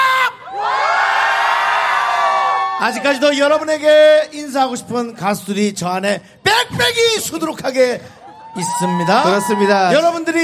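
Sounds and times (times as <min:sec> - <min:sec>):
concert audience shouting and cheering: 0:00.0 - 0:04.1, 0:08.1 - 0:10.4
speech: 0:02.8 - 0:10.4.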